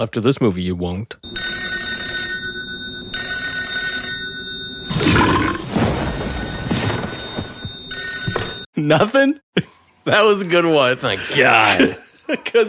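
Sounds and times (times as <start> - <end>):
speech: 0.0 - 1.4, 8.8 - 12.6
telephone bell ringing: 1.2 - 8.7.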